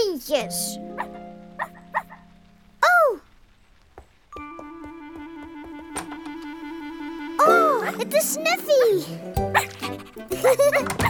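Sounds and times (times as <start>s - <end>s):
speech: 0.2s - 1.2s, 8.0s - 11.0s
wet dog barking and yipping: 1.0s - 2.3s, 9.5s - 10.0s.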